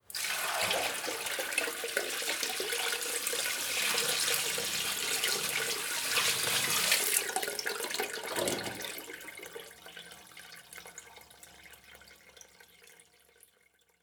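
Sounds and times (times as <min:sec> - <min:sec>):
water bucket being emptied: 0:00.0 - 0:09.2.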